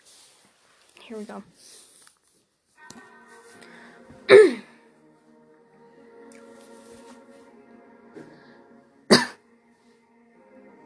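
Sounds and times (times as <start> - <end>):
speech: 1.1 - 1.9
person with a scratchy voice coughing: 4.3 - 4.7, 9.1 - 9.4.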